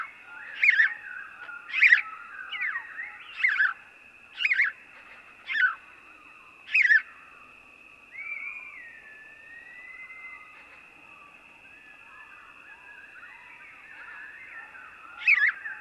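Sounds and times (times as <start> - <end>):
house sparrow cheep chirps: 0.0 - 3.8, 4.4 - 5.8, 6.7 - 7.1, 13.9 - 15.8
faint steady whine: 0.0 - 15.8.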